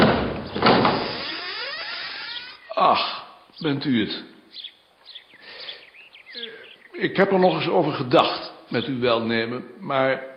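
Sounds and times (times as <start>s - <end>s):
door being opened: 0.0s - 2.6s
speech: 2.8s - 4.7s, 7.0s - 10.3s.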